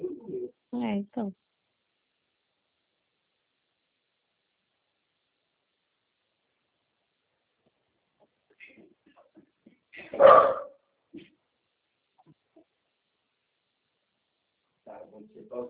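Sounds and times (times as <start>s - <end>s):
soft murmuring: 0.0s - 0.6s
speech: 0.8s - 1.5s
dog barking: 10.0s - 10.8s.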